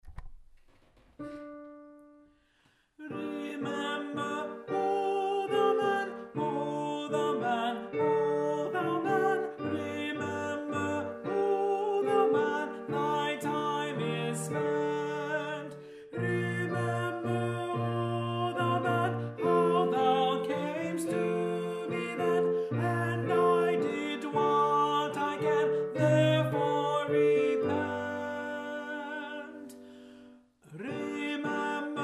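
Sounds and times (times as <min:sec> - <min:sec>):
alto voice singing: 0:03.0 - 0:30.0, 0:30.6 - 0:32.0.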